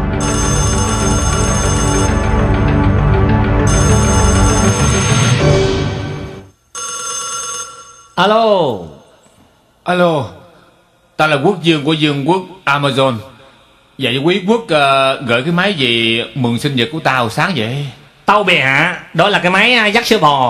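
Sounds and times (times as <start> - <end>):
telephone ringing after a number is dialled: 0.2 - 2.6, 3.6 - 8.4
speech: 8.2 - 8.9, 9.9 - 10.4, 11.2 - 13.3, 14.0 - 20.4.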